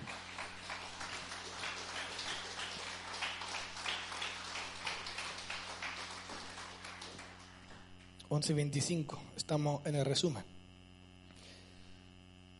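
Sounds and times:
crowd applauding in praise of God: 0.0s - 8.2s
low hum: 0.0s - 12.5s
speech: 8.3s - 10.6s.

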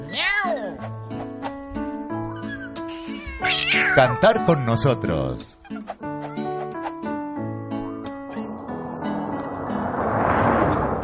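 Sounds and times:
cat meowing: 0.0s - 0.8s, 2.4s - 4.2s
steady musical backdrop: 0.0s - 11.0s
speech: 3.7s - 5.7s.

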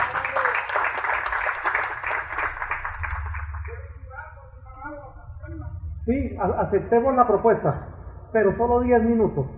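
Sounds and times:
audience applause: 0.0s - 3.9s
speech: 6.1s - 9.5s.

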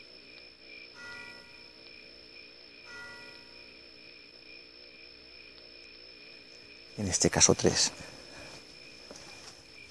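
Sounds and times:
church bells ringing: 1.0s - 1.6s, 2.9s - 3.6s
speech: 7.0s - 8.1s.

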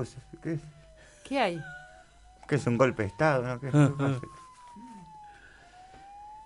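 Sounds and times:
speech: 0.0s - 1.8s, 2.5s - 4.4s
faint siren wailing: 0.0s - 6.4s
laughter: 3.7s - 4.4s.

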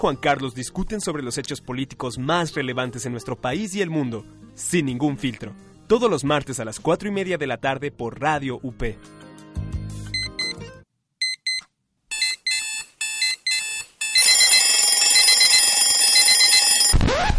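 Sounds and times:
speech: 0.0s - 9.2s
alarm clock with shrill electronic beeps: 10.2s - 10.6s, 11.2s - 17.0s.

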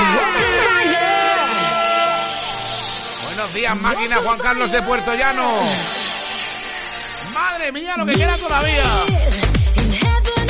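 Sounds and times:
excited voices shouting: 0.0s - 6.4s
air horn blast: 0.7s - 3.8s
speech: 3.6s - 6.2s, 7.4s - 9.5s.

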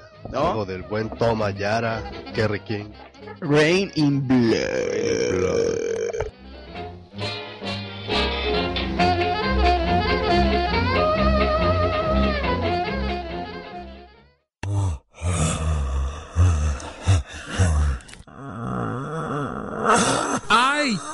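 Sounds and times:
music: 0.0s - 5.6s, 6.3s - 14.5s
speech: 0.3s - 6.0s
zombie groaning sound effect with guttural gurgling moans and growls: 3.7s - 6.2s, 14.6s - 21.1s.

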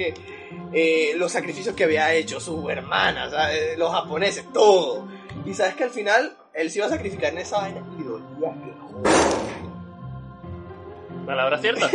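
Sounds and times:
speech: 0.0s - 9.3s, 11.3s - 11.9s
heavy door thudding shut: 9.0s - 9.7s
laughter: 11.7s - 11.9s.

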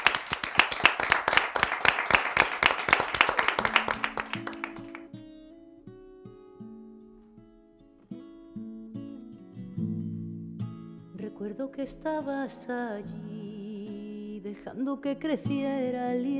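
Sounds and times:
studio audience applause: 0.0s - 5.1s
speech: 11.5s - 13.3s, 14.6s - 16.3s.

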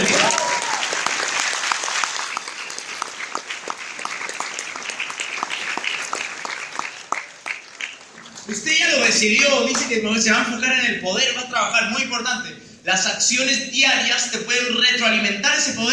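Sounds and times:
audience applause at a motivational talk: 0.0s - 8.7s
speech: 9.2s - 15.9s.

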